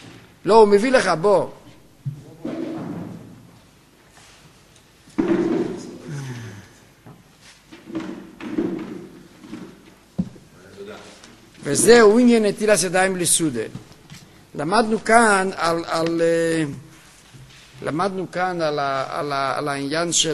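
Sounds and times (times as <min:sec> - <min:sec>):
speech: 0:00.4 - 0:02.2, 0:11.7 - 0:13.9, 0:14.6 - 0:16.8, 0:17.8 - 0:20.3
wooden chair being set down: 0:05.1 - 0:06.0, 0:07.1 - 0:10.5.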